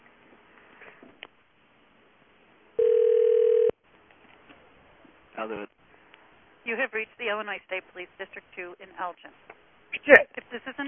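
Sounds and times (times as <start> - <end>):
electronic telephone ring tone of a call ringing out: 2.8 - 3.8
speech: 5.4 - 5.8, 6.6 - 10.8.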